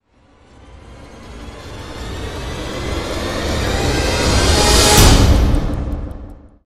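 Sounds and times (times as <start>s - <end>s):
power string swell hit from a game: 2.0s - 6.1s.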